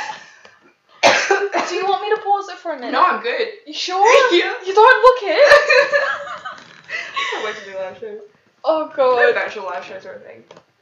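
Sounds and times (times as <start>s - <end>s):
rough choking cough: 1.0s - 1.7s
speech: 2.7s - 6.2s, 7.4s - 10.7s.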